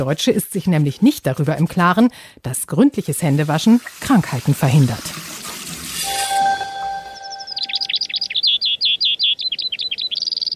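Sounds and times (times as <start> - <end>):
speech: 0.0 - 5.2
hissing noise: 5.6 - 8.0
faint tonal hum: 6.0 - 8.4
Eurasian skylark song: 6.1 - 10.5.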